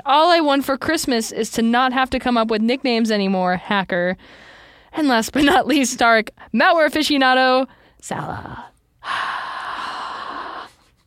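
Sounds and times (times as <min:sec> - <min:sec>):
speech: 0:00.1 - 0:09.3
breath blown straight into a microphone: 0:04.2 - 0:04.9, 0:09.0 - 0:11.0.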